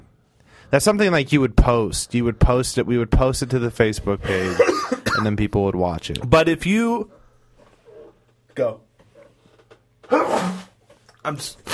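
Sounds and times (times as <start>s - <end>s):
speech: 0.7s - 7.2s, 8.6s - 8.8s, 11.2s - 11.7s
person sneezing: 10.0s - 10.8s.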